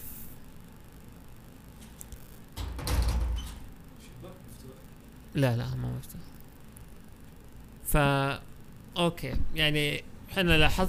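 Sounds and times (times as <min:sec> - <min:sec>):
quiet room noise: 0:00.0 - 0:10.8
door sliding or swinging shut: 0:02.6 - 0:03.8
speech: 0:05.4 - 0:06.4, 0:07.9 - 0:08.4, 0:09.0 - 0:10.8.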